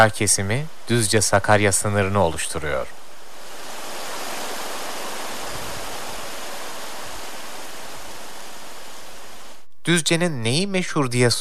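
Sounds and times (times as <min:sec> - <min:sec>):
speech: 0:00.0 - 0:03.0, 0:09.8 - 0:11.4
stream water flowing: 0:01.8 - 0:09.7.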